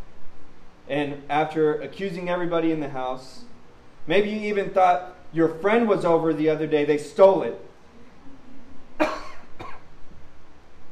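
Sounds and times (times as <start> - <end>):
speech: 0.9 - 7.7
person coughing from a tickle in the throat: 9.0 - 9.9.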